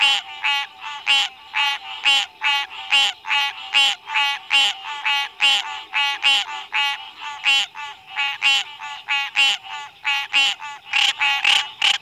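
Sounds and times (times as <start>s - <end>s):
two male green tree frogs giving advertisement calls: 0.0s - 11.9s.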